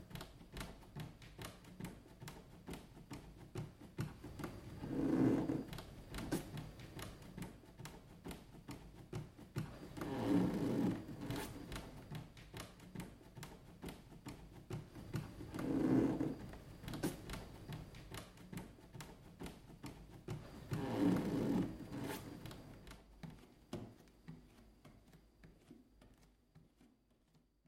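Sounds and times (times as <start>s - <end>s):
wooden floor creaking: 4.1s - 7.6s, 9.3s - 13.1s, 14.8s - 18.8s, 20.3s - 24.4s.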